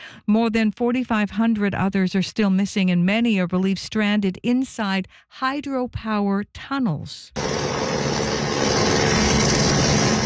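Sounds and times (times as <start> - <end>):
speech: 0.2 - 9.6
helicopter engine and rotor noise: 7.4 - 10.2.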